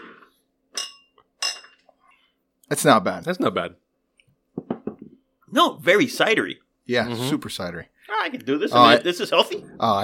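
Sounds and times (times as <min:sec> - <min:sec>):
glasses clinking in a toast: 0:00.7 - 0:01.8
speech: 0:02.7 - 0:03.8, 0:05.6 - 0:10.0.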